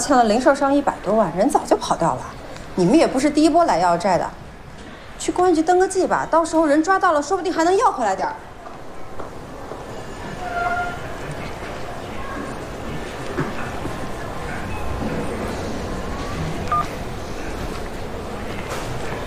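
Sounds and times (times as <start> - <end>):
speech: 0.0 - 4.4, 5.2 - 8.5
steady rushing noise: 0.0 - 19.2
telephone keypad dialing tones: 16.7 - 16.9.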